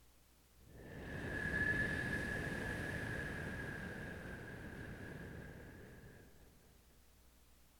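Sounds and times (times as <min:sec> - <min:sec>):
wind: 0:00.0 - 0:07.7.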